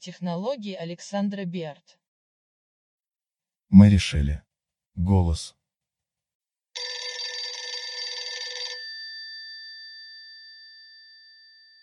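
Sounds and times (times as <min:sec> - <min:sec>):
speech: 0:00.0 - 0:02.0, 0:03.7 - 0:05.6
old-style telephone bell ringing: 0:06.8 - 0:11.8.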